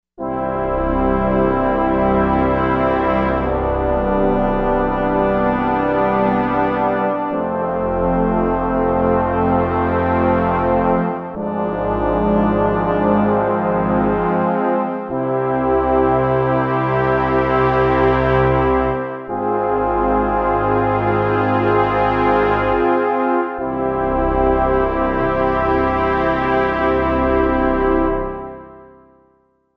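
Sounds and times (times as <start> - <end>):
regal horns: 0.2 - 29.0.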